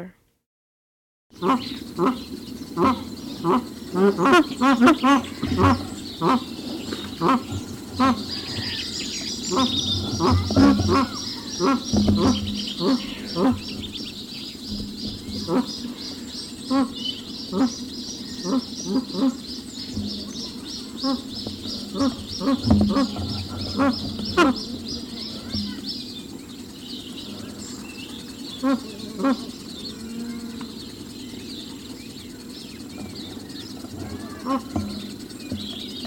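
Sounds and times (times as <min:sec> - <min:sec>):
magpie goose call: 0:01.4 - 0:26.4, 0:28.4 - 0:30.0, 0:33.4 - 0:35.9.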